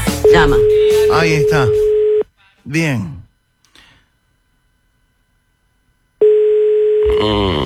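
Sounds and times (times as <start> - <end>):
telephone ringing tone of an outgoing call: 0.2 - 2.3, 6.2 - 7.2
speech: 0.3 - 1.8, 2.6 - 3.2, 7.2 - 7.6.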